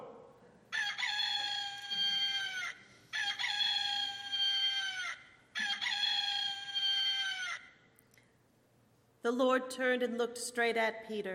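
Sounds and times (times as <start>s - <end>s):
rooster crowing: 0.7s - 7.8s
speech: 9.3s - 11.3s.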